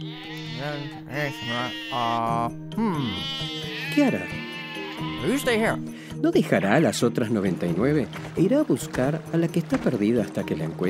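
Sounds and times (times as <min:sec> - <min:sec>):
speech: 0:00.0 - 0:04.4, 0:05.0 - 0:10.8
sheep bleating: 0:00.0 - 0:05.8, 0:06.4 - 0:07.3.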